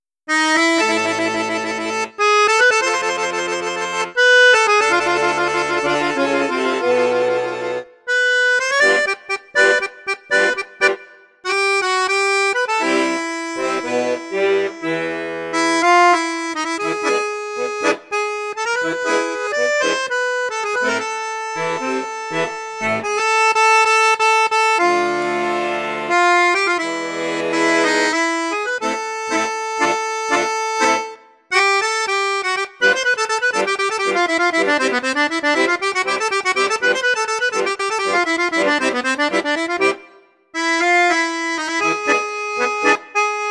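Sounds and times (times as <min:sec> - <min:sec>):
accordion playing on bassoon and flute registers: 0:00.0 - 0:43.4.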